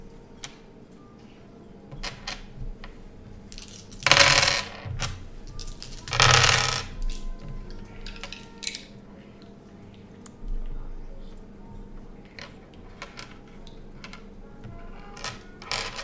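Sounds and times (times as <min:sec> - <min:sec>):
platinum coins clinking as players toss them onto a pile: 0:03.4 - 0:09.0, 0:12.2 - 0:16.0.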